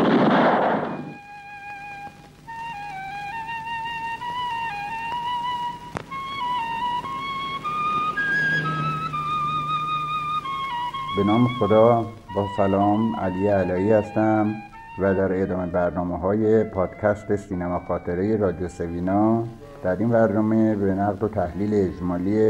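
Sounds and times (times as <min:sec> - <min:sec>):
revolver gunshot: 0:00.0 - 0:01.2
rising wavering whistling tone: 0:00.5 - 0:19.4
speech: 0:11.2 - 0:22.4.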